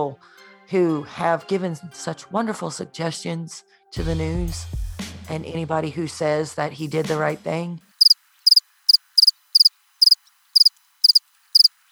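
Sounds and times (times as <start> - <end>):
speech: 0.0 - 7.8
crickets chirping: 8.0 - 11.9.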